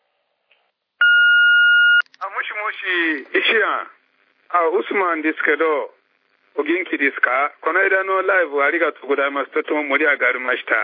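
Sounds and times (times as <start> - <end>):
answering machine beep: 1.0 - 2.1
speech: 2.6 - 6.0, 6.6 - 10.8.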